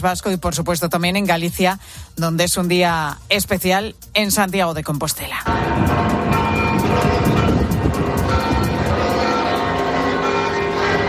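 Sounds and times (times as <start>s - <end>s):
speech: 0.0s - 6.2s
large cathedral church bells pealing: 5.5s - 11.0s.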